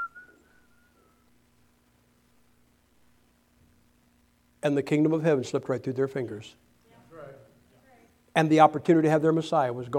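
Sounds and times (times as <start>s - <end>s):
person whistling a single steady note: 0.0s - 1.2s
speech: 4.6s - 6.7s, 8.4s - 9.9s.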